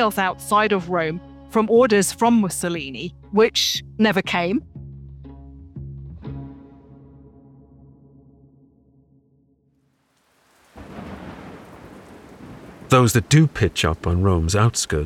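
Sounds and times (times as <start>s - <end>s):
speech: 0.0s - 4.7s, 12.9s - 15.0s
heavy rain pouring near the outskirts of Rome: 10.0s - 15.0s
deep droning thunder rumbling near the outskirts of Rome: 10.5s - 15.0s.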